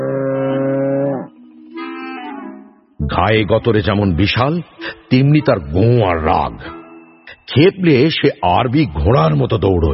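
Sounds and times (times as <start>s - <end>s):
huge ill-tempered bull lowing: 0.0s - 1.4s
speech: 3.2s - 6.8s, 7.5s - 9.9s.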